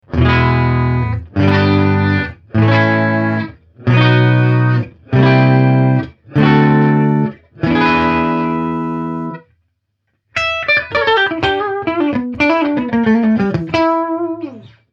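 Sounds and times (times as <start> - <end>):
clean electric guitar with aluminium bridge: 0.0 - 9.5, 10.3 - 14.9.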